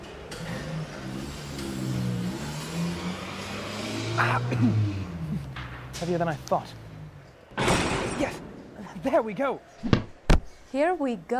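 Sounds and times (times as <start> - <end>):
heavy truck engine revving and driving off: 0.0 - 8.6
speech: 4.2 - 4.9, 6.0 - 6.8, 8.2 - 8.4, 9.0 - 10.0, 10.7 - 11.3.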